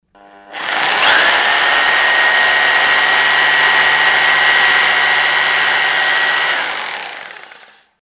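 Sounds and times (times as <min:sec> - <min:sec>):
rotary hammer drilling: 0:00.5 - 0:07.9.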